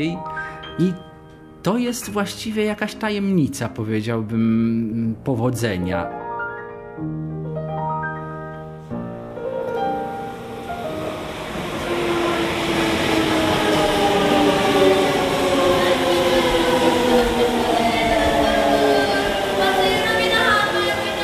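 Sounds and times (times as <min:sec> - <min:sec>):
speech: 0:00.0 - 0:06.2, 0:07.0 - 0:07.4
Shinkansen high-speed train pulling away with electric motors whining: 0:09.6 - 0:21.2.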